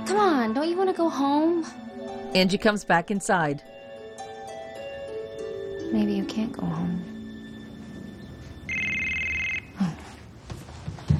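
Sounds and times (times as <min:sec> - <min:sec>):
speech: 0:00.1 - 0:03.8, 0:05.9 - 0:07.1
telephone ringing with electronic burst: 0:08.7 - 0:09.8.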